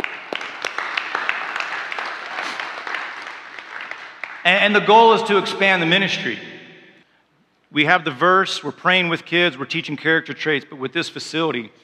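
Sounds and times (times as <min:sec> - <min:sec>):
room full of people applauding: 0:00.0 - 0:04.6
speech: 0:04.4 - 0:06.5, 0:07.7 - 0:11.8.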